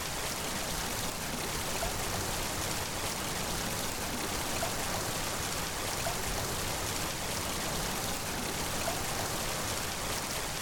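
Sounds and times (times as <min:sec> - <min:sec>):
small waterfall: 0:00.0 - 0:10.6.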